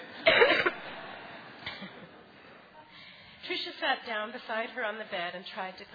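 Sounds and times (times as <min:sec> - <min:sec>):
laughter: 0:00.0 - 0:02.7
person producing a harsh staged cough: 0:00.2 - 0:00.8
speech: 0:03.6 - 0:05.9.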